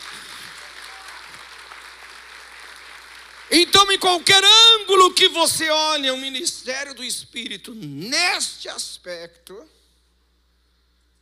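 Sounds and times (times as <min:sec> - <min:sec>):
audience applauding: 0:00.0 - 0:05.0
speech: 0:03.5 - 0:09.8.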